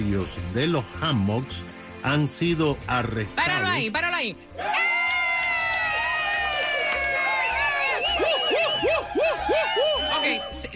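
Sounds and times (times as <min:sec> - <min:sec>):
speech: 0:00.0 - 0:04.8
loud crowd shouting and cheering: 0:04.5 - 0:10.7.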